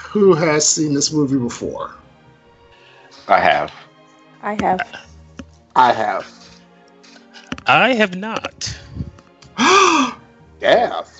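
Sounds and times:
speech: 0:00.1 - 0:02.0, 0:03.2 - 0:05.1, 0:05.8 - 0:06.4, 0:07.7 - 0:08.9, 0:09.6 - 0:11.1
person gasping with theatrical shock: 0:08.6 - 0:10.2.

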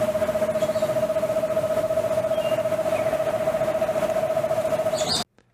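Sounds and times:
eastern screech owl giving a monotone trill: 0:00.1 - 0:03.7, 0:04.9 - 0:05.3.

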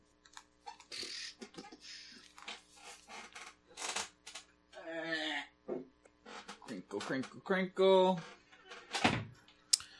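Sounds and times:
speech: 0:06.9 - 0:08.4
door swinging shut with a dull thud: 0:08.7 - 0:09.3.

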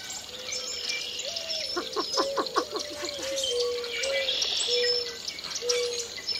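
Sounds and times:
clear whistled bird notes: 0:00.0 - 0:06.3
constant insect-like hiss: 0:00.0 - 0:06.3
red-winged blackbirds calling from thickets in a marsh: 0:00.0 - 0:06.3
boat-tailed grackles calling from thickets in a marsh: 0:01.2 - 0:05.9.

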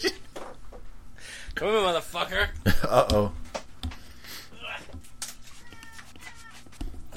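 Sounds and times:
speech: 0:01.6 - 0:03.4
cat meowing in short strained cries: 0:05.6 - 0:06.6.

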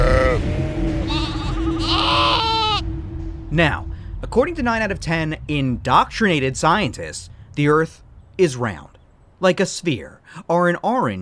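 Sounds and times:
low rumbling background: 0:00.0 - 0:10.3
sheep bleating: 0:01.1 - 0:02.8
speech: 0:03.5 - 0:11.2.

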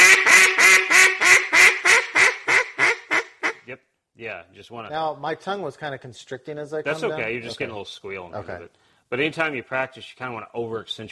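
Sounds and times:
duck call blown in descending hen mallard quacks: 0:00.0 - 0:03.7
speech: 0:04.4 - 0:11.1.

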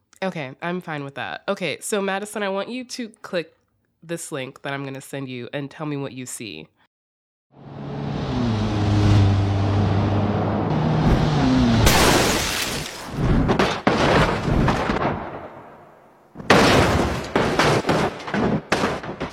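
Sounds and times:
speech: 0:00.2 - 0:06.8
animated car engine humming and revving on a highway: 0:07.6 - 0:11.9
car smashing into giant rotating sledgehammers: 0:11.8 - 0:15.8, 0:16.4 - 0:19.3.

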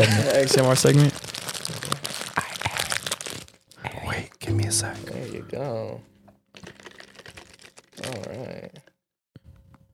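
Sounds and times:
speech: 0:00.0 - 0:01.3, 0:04.8 - 0:06.1
crisp flaky crackles and crinkles of a croissant: 0:00.3 - 0:04.3, 0:06.5 - 0:08.9
crunchy bites into a croissant: 0:01.0 - 0:03.7, 0:06.6 - 0:08.8.

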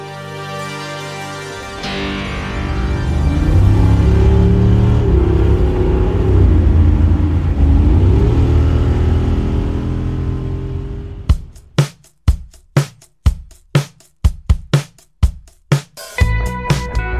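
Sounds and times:
sharp rhythmic musical hits: 0:00.8 - 0:07.9, 0:11.1 - 0:17.1
car engine revving and accelerating: 0:01.8 - 0:11.8.

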